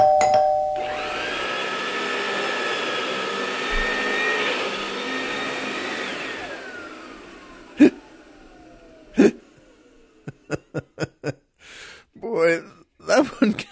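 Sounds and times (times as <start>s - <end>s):
doorbell ringing: 0.0s - 1.3s
vacuum cleaner whirring and winding down: 0.6s - 10.8s
laughter: 10.2s - 11.4s.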